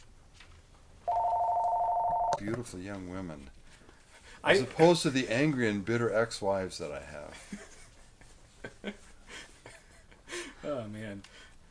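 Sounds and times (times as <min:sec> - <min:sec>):
telephone ringing with electronic ring tone: 0:01.1 - 0:02.4
speech: 0:02.4 - 0:03.6, 0:04.4 - 0:07.7, 0:10.7 - 0:11.5.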